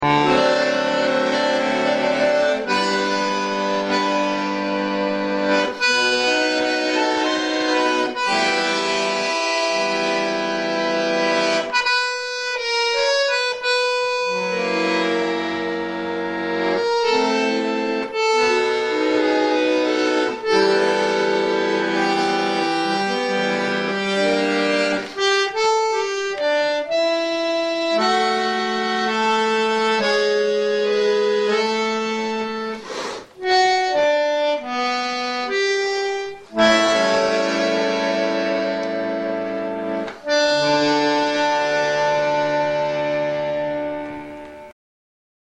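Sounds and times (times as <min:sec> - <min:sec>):
bandoneon: 0:00.0 - 0:44.8.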